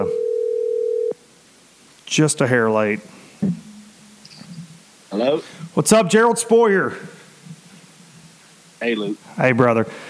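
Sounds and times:
speech: 0.0s - 0.2s, 2.1s - 3.7s, 5.1s - 7.2s, 8.8s - 10.0s
electronic ring tone on a phone line: 0.0s - 1.2s.

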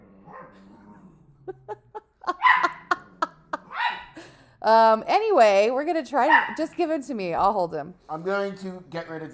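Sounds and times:
laughter: 1.4s - 4.3s
small male rescue puppy sharp barks and yips: 2.3s - 3.0s, 3.7s - 4.2s, 6.3s - 6.6s
speech: 4.6s - 9.3s.

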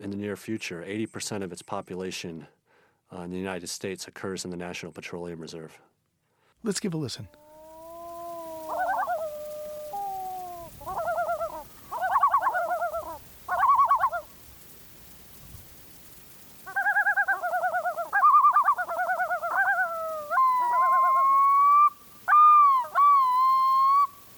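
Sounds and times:
speech: 0.0s - 5.9s, 6.6s - 7.4s
pair of loons calling to announce territory on a lake: 7.3s - 24.3s.

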